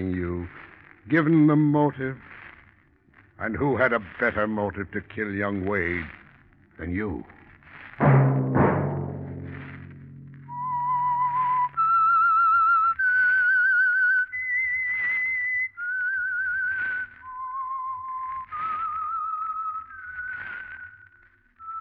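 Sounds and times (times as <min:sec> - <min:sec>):
speech: 0:00.0 - 0:02.3, 0:03.4 - 0:06.2, 0:06.8 - 0:07.4
sharp resonant strikes: 0:08.0 - 0:11.6
lone whistler whistling a slow wavering melody: 0:10.4 - 0:21.8.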